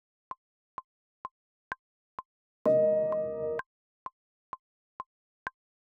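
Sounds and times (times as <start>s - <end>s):
piano: 2.7s - 3.6s.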